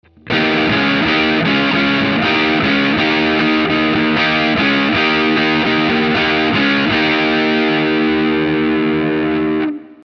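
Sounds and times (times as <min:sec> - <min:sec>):
guitar through iRig overdrive: 0:00.0 - 0:10.0.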